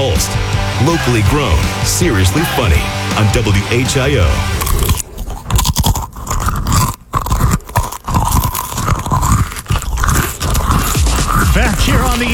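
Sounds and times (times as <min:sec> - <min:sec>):
speech: 0:00.2 - 0:04.9, 0:12.2 - 0:12.3
crunching and munching of crunchy cheese crackers: 0:04.5 - 0:12.3.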